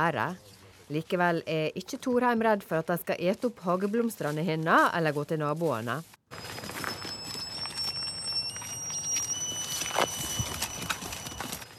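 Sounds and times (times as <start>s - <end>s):
speech: 0.0s - 6.5s
goat's virtual-fence collar high electronic warning tone: 6.3s - 11.7s
outdoor clatter and rustling from goats moving about: 6.4s - 11.7s.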